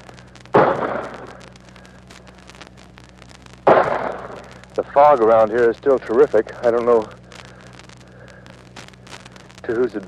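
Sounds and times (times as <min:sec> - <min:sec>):
mortar blasts from a regiment firing mortars in a foggy valley: 0:00.1 - 0:02.4, 0:03.6 - 0:05.4
speech: 0:04.8 - 0:07.2, 0:09.7 - 0:10.0.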